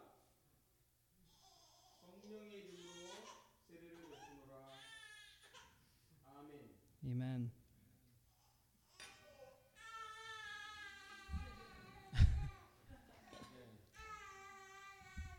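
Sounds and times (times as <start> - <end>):
infant crying during an infant baptism at a church: 1.3 - 5.8, 8.3 - 12.7, 13.9 - 15.3.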